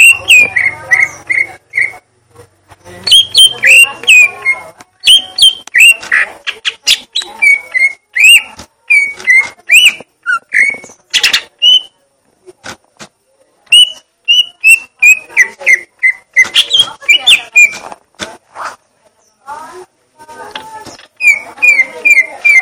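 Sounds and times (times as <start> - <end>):
leafbird singing a gledek song type: 0.0 - 2.0, 2.8 - 12.0, 13.7 - 17.9, 20.4 - 22.6.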